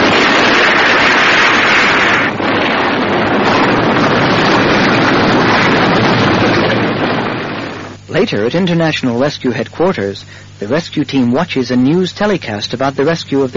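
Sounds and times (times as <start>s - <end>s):
test aircraft exploding into a huge ball of flame: 0.0s - 8.8s
speech: 8.2s - 13.5s.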